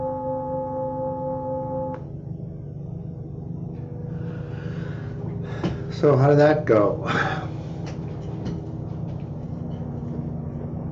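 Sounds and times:
helicopter droning loudly overhead: 0.0 - 10.9
speech: 6.0 - 7.4.

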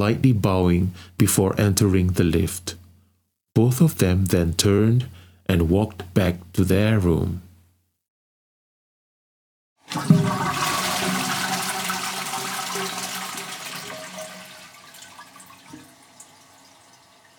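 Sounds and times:
speech: 0.0 - 2.8, 3.6 - 7.5
toilet flushing and refilling: 9.8 - 17.3.

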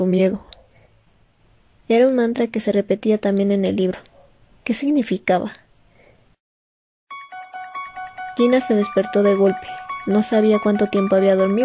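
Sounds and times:
speech: 0.0 - 0.5, 1.9 - 4.1, 4.7 - 5.6, 8.4 - 11.6
cell phone ringtone playing eerie horror-movie theme: 7.1 - 11.6.

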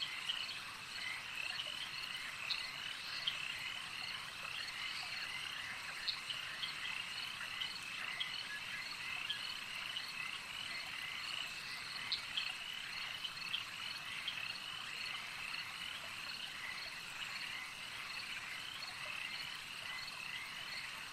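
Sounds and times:
crickets trilling and chirping in a night swamp: 0.0 - 21.1
frogs croaking in a night swamp: 0.0 - 21.1.

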